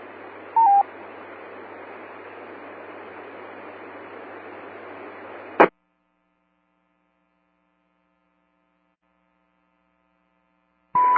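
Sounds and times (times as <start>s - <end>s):
hissing band-limited radio channel static: 0.0s - 11.1s
short radio beacon tones from a just-launched high-altitude balloon: 0.6s - 0.9s.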